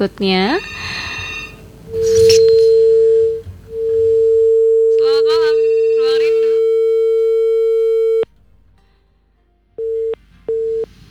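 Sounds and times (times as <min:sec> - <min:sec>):
speech: 0:00.0 - 0:01.0
short beeps: 0:00.5 - 0:08.2
telephone busy or disconnect tone on a radio call-in line: 0:01.9 - 0:08.2.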